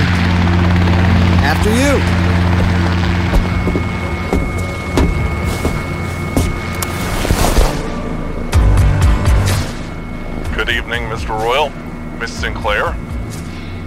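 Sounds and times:
helicopter rotor thumping: 0.0 - 7.8
chartered helicopter engine droning with a whining hum toward Catalina Island: 0.0 - 13.8
speech: 1.6 - 2.2, 10.9 - 13.0.

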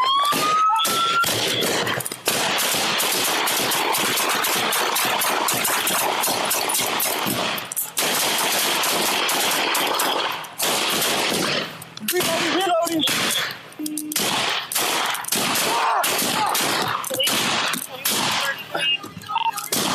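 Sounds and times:
rapid rifle gunfire during a police shooting: 0.2 - 13.5, 14.1 - 18.6, 19.7 - 19.9.

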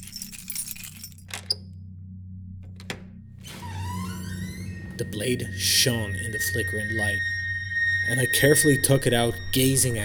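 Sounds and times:
keys jingling: 0.0 - 1.6
speech: 5.0 - 7.3, 8.1 - 10.0.

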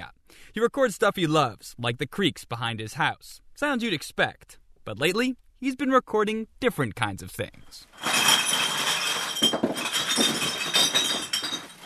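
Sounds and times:
speech: 0.5 - 8.5
glass beer bottles cascading at a recycling center: 7.9 - 11.8.

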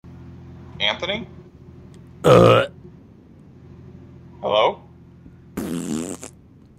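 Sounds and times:
speech: 0.8 - 1.4, 2.2 - 2.8
buzzing raspberry blown with the lips imitating a fart: 5.6 - 6.4.

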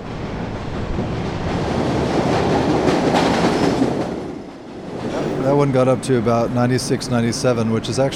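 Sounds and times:
subway train rumbling into a station: 0.0 - 8.1
brief high squeal of subway train: 5.0 - 6.4
speech: 5.5 - 8.1.

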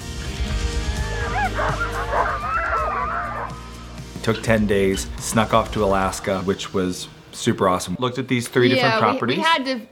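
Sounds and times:
pack of sled dogs barking and yipping on a dog sledding outing in Alaska: 0.8 - 3.7
speech: 4.2 - 9.8.

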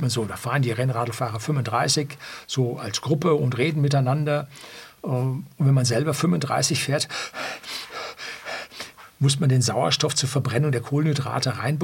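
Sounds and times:
speech: 0.0 - 7.8, 9.2 - 11.8
voice imitating heavy panting of someone out of breath: 7.1 - 9.1.

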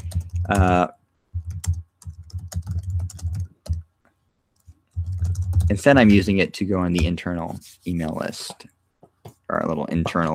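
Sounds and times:
typing on a computer keyboard: 0.0 - 0.8, 1.4 - 3.8, 4.6 - 5.8
speech: 0.5 - 1.0, 5.7 - 8.7, 9.5 - 10.3.

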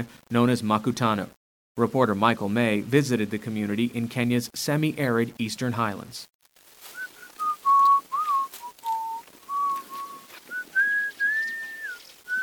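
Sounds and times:
speech: 0.0 - 6.3
man whistling a tune while working as caretaker of an earthen dam reservoir in rural Kenya: 7.0 - 12.4.

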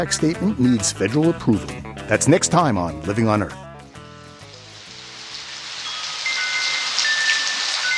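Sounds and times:
speech: 0.0 - 3.6
droplets pattering on surfaces: 4.4 - 7.9
steady rain from a midnight rainstorm in California: 4.4 - 7.9.

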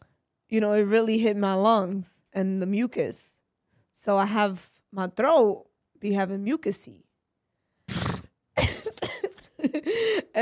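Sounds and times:
speech: 0.5 - 3.4, 4.0 - 7.0, 9.8 - 10.4
harsh hacking coughs: 7.9 - 9.6
dry cough: 7.9 - 9.9.

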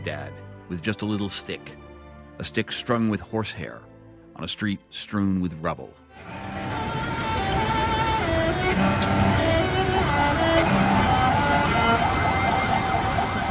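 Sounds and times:
speech: 0.0 - 1.8, 2.4 - 6.5
dense continuous roar of street traffic: 6.1 - 13.4
sirens wailing: 6.2 - 13.4.

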